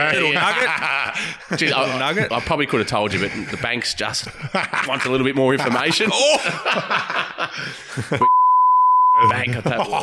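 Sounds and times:
laughter: 0.0s - 8.3s, 9.2s - 10.0s
speech: 0.0s - 8.4s, 9.2s - 10.0s
single-pitch censor bleep: 8.2s - 9.4s.

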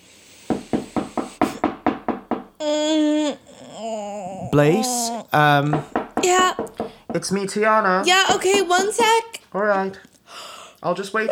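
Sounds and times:
firm knocking on a door: 0.5s - 2.6s, 5.5s - 9.2s
speech: 4.5s - 10.1s, 10.8s - 11.3s.

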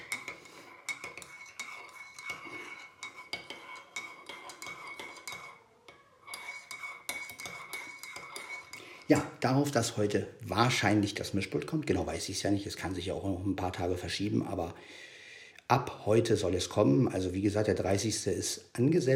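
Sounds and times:
cups and spoons clinking as people sit down to coffee: 0.0s - 9.3s
speech: 9.1s - 15.1s, 15.7s - 19.1s.

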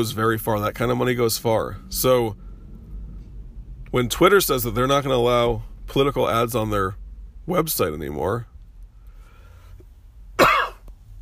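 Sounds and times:
speech: 0.0s - 2.4s, 3.9s - 8.5s
person coughing from a cold: 10.4s - 10.8s.

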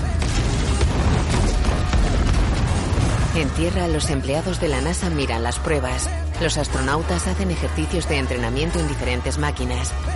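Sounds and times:
Redstone rocket test launches exploding in flight: 0.2s - 4.2s
speech: 3.4s - 10.1s.

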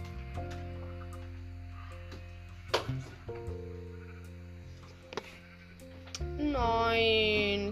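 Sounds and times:
steady droning background: 0.0s - 7.7s
video game sheep bleating: 3.8s - 4.3s, 5.2s - 5.8s.

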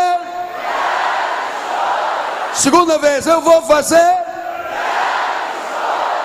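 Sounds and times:
single amplified voice speaking: 0.0s - 0.5s, 2.6s - 4.6s
large crowd shouting a Portuguese phrase in unison: 0.5s - 2.6s, 4.4s - 6.2s
speech: 2.6s - 4.2s.

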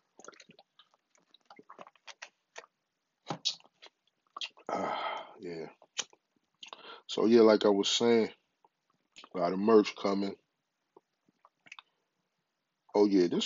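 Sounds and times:
person sipping water: 0.0s - 2.7s, 3.3s - 7.0s
breathy exhale: 4.7s - 5.4s, 6.8s - 7.1s
speech: 7.2s - 8.4s, 9.4s - 10.4s, 13.0s - 13.4s.

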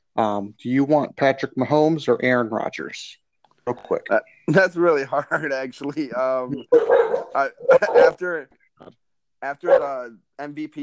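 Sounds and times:
speech: 0.2s - 10.8s
dog barking: 6.7s - 8.2s, 9.6s - 10.0s.

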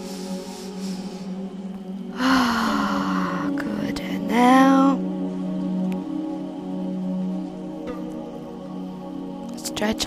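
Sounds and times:
deep cleansing breath during a guided relaxation exercise: 0.0s - 3.6s
steady gentle music: 0.0s - 10.0s
speech: 9.8s - 10.0s.

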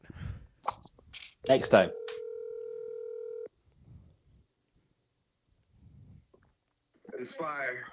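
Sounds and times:
faint noise: 0.0s - 7.9s
speech: 1.5s - 2.0s
loud steady telephone tone: 1.5s - 3.5s.

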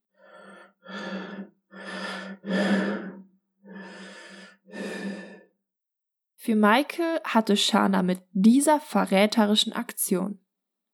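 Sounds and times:
heavy labored male breathing on a phone call: 0.0s - 5.6s
speech: 6.4s - 10.4s.

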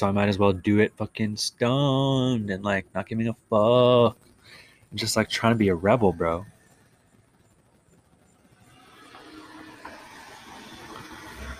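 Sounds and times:
speech: 0.0s - 4.3s, 4.9s - 6.5s
road traffic rumble: 0.0s - 11.5s
cars driving by: 8.6s - 11.5s.

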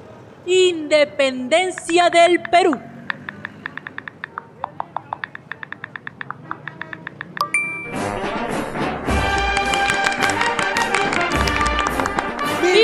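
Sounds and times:
speech: 0.4s - 2.9s
typing on a mobile phone keypad: 1.7s - 7.5s, 9.3s - 12.4s
loud busy music from a phone: 7.9s - 12.7s.

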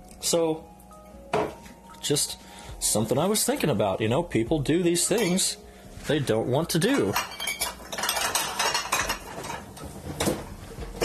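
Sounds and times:
speech: 0.2s - 0.7s, 2.1s - 7.4s
plates and cutlery clinking while dishes are washed: 5.0s - 5.6s, 6.8s - 11.0s.

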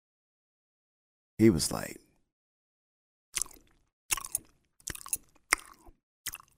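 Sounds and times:
speech: 1.4s - 2.0s
voice imitating loud sloppy gum chewing: 3.4s - 6.5s.

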